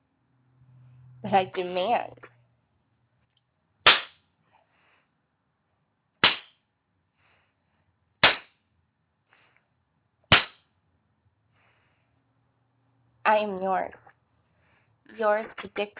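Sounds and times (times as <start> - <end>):
speech: 1.2 - 2.3, 13.3 - 14.0, 15.1 - 15.9
hand slaps spanking a person's buttocks: 3.9 - 4.2, 6.2 - 6.6, 8.2 - 8.6, 10.3 - 10.7.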